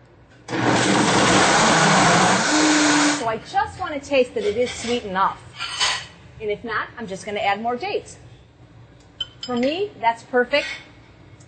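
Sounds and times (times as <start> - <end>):
blender blending a smoothie with ice cubes: 0.5 - 3.3
speech: 4.1 - 5.5, 6.4 - 8.2, 9.5 - 10.8.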